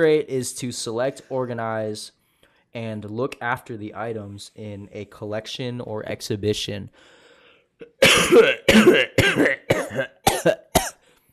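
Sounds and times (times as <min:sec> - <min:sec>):
speech: 0:00.0 - 0:07.2, 0:07.8 - 0:10.6
deliberate throaty forced coughs: 0:07.8 - 0:11.0.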